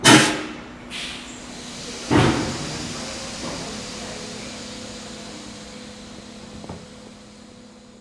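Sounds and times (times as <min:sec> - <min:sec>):
train pressure dropping: 0:00.0 - 0:08.0.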